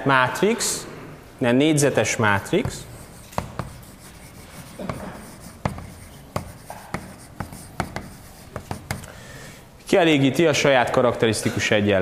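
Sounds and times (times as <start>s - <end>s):
speech: 0.0s - 2.9s, 9.9s - 12.0s
scratchy handwriting strokes writing out a matrix theorem: 2.4s - 9.1s.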